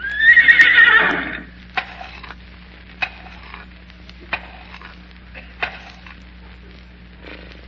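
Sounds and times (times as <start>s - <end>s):
trained horse whinnying loudly: 0.0s - 1.5s.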